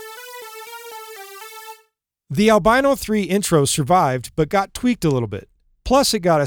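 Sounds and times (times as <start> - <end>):
bright buzzy synth lead hook from a factory Logic channel strip preset: 0.0 - 1.9
speech: 2.3 - 6.4.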